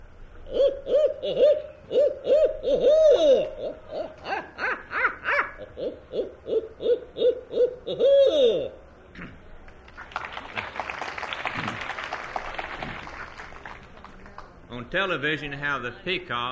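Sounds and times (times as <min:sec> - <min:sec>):
person imitating hoot owl calls: 0:00.4 - 0:09.4
speech: 0:01.2 - 0:01.5, 0:15.0 - 0:16.4
broad rustling crowd noise: 0:08.7 - 0:16.4.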